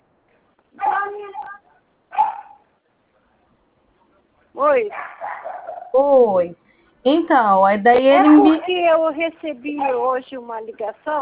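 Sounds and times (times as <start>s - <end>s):
mixed-breed dog barking: 0.8s - 2.7s, 4.9s - 6.0s, 9.8s - 10.2s
speech: 4.6s - 11.2s.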